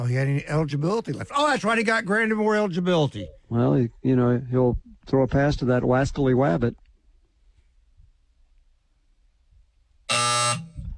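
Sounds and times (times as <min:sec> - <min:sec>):
speech: 0:00.0 - 0:06.8
faint low noise: 0:00.0 - 0:10.9
loud harsh electronic buzzer blaring: 0:10.1 - 0:10.9.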